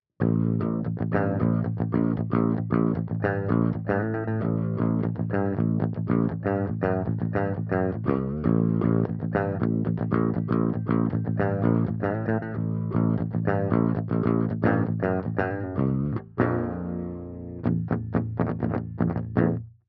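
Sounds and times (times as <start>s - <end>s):
7 string guitar riffing: 0.2s - 19.7s.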